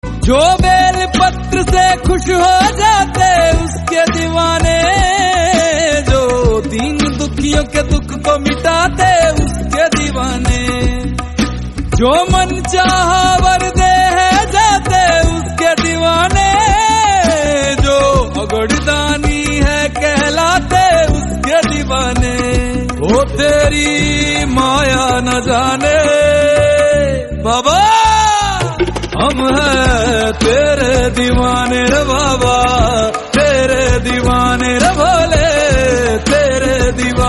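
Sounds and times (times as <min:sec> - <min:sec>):
Hindi Bhakti devotional song: 0:00.0 - 0:37.2.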